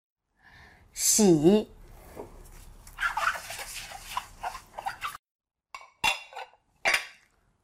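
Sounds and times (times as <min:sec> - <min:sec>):
speech: 0:01.0 - 0:01.8
utensils clattering and scraping against a salad bowl: 0:02.5 - 0:05.2.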